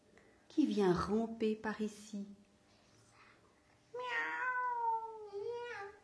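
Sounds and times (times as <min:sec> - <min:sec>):
speech: 0:00.7 - 0:02.4
cat meowing: 0:04.0 - 0:06.0.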